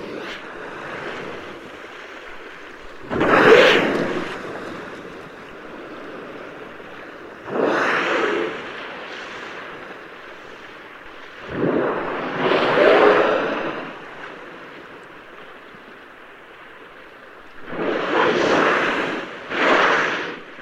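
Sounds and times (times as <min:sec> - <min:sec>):
whale blowing through its blowhole: 0:00.0 - 0:06.7, 0:07.4 - 0:10.5, 0:11.3 - 0:14.7, 0:17.6 - 0:20.5
soft ocean wash: 0:00.0 - 0:20.5
wind noise: 0:00.0 - 0:20.5.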